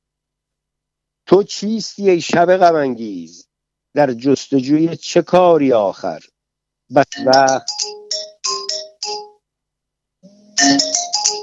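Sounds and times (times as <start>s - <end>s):
speech: 1.3s - 6.3s, 6.9s - 7.9s
mobile phone ringtone: 7.1s - 9.4s, 10.2s - 11.4s.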